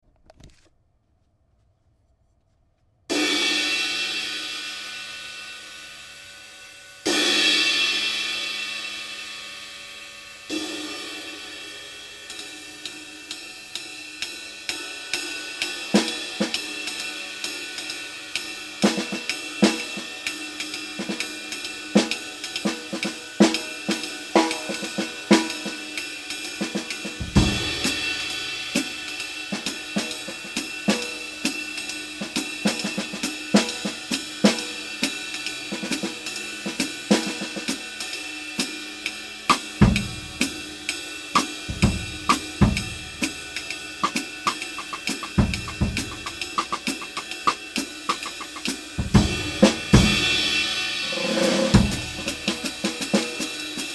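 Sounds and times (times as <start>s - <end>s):
Sabian 20 inch hi-hat cymbal: 3.1s - 53.9s.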